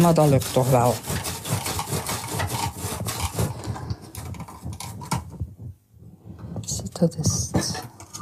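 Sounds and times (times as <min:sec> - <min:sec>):
speech: 0:00.0 - 0:01.3, 0:07.0 - 0:07.9
very sharp knife pushed hard through firm raw fennel: 0:00.0 - 0:03.6.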